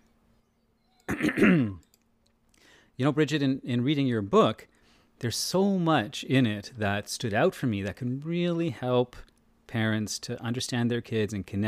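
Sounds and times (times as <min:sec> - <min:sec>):
throat clearing: 0:01.1 - 0:01.8
speech: 0:01.2 - 0:01.8, 0:03.0 - 0:11.6.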